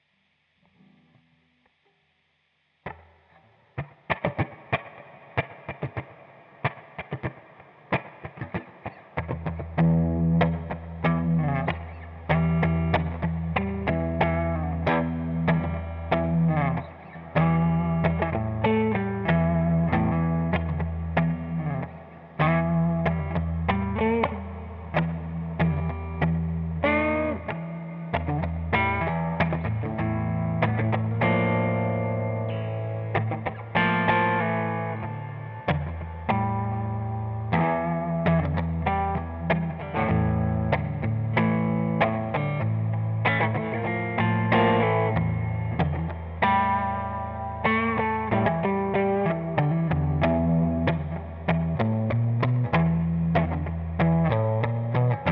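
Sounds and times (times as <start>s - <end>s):
fuzz guitar groove: 2.9s - 55.3s.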